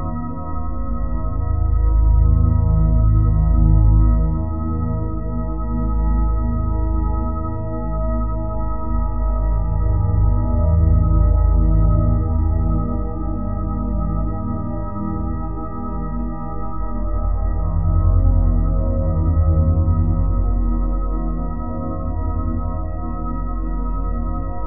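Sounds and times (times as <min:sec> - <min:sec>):
sustained 174Hz solfeggio tone drone: 0:00.0 - 0:24.6.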